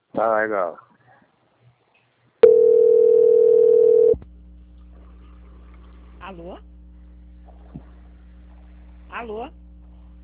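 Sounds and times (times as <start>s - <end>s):
speech: 0.2s - 0.9s, 6.3s - 6.7s, 9.1s - 9.6s
telephone line tone while a call is transferred: 2.4s - 4.2s
low faint telephone line hum: 2.4s - 10.2s.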